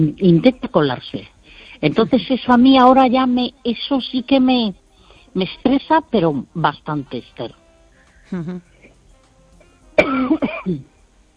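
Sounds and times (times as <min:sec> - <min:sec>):
speech: 0:00.0 - 0:07.6, 0:08.3 - 0:08.7, 0:10.0 - 0:10.9
person coughing: 0:10.0 - 0:10.9.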